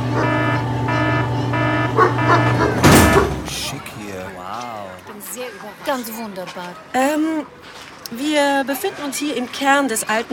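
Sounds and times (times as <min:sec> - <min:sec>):
loud droning hum: 0:00.0 - 0:04.1
dog on a leash barking: 0:02.0 - 0:03.4
speech: 0:05.7 - 0:10.3.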